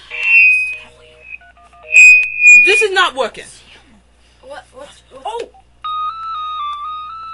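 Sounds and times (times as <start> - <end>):
phone ringing with an electronic ringtone: 0.0 - 2.9, 5.8 - 7.3
speech: 3.0 - 3.6.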